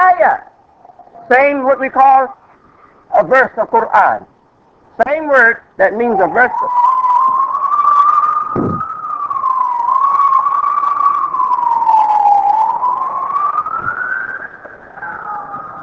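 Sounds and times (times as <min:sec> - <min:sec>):
speech: 0:00.2 - 0:00.5, 0:01.3 - 0:02.4, 0:03.1 - 0:04.3, 0:05.0 - 0:06.9
emergency vehicle siren passing: 0:06.0 - 0:15.8.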